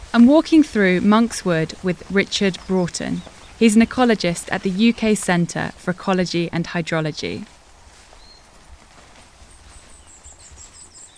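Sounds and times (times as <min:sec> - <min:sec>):
outdoor noise in Monk's Wood, UK: 0:00.0 - 0:11.1
speech: 0:00.1 - 0:07.6
goldfinches twittering while flying overhead in Monk's Wood, UK: 0:00.7 - 0:07.5, 0:08.1 - 0:08.7, 0:09.4 - 0:11.1.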